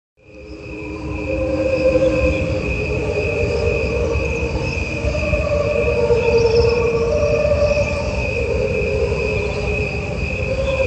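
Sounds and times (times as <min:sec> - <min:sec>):
crickets trilling in a dense chorus: 0:00.2 - 0:10.8.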